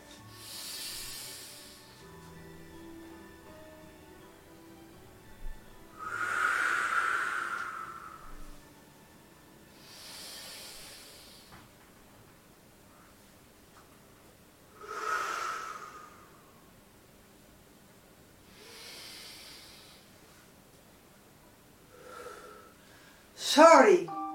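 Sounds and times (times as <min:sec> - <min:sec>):
slow deep breathing in during a guided meditation: 0:00.3 - 0:02.1, 0:06.0 - 0:08.6, 0:09.7 - 0:11.8, 0:14.7 - 0:16.7, 0:18.4 - 0:20.6, 0:21.9 - 0:23.4
speech: 0:23.6 - 0:24.2.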